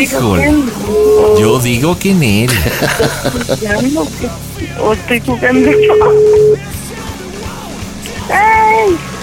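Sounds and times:
speech: 0.0s - 6.7s, 8.3s - 9.1s
excited overlapping voices talking and exclaiming: 0.0s - 9.2s
phone call ringing with an electronic tone: 0.8s - 2.4s, 5.4s - 6.6s
laughter: 2.4s - 4.0s.

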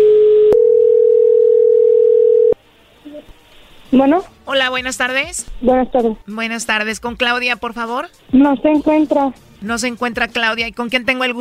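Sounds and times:
telephone call ringing tone: 0.0s - 2.6s
speech: 4.0s - 11.3s.

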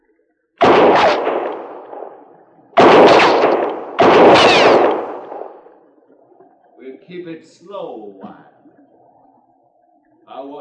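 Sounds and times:
gunshots fired at a person with rolling echo: 0.6s - 5.7s
speech: 7.1s - 8.6s.

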